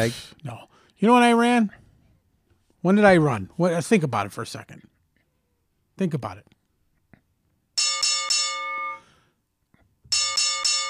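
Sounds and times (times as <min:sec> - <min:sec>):
speech: 0:00.0 - 0:01.8, 0:02.8 - 0:04.9, 0:06.0 - 0:06.5
ice cream truck bell: 0:07.8 - 0:09.1, 0:10.1 - 0:10.8.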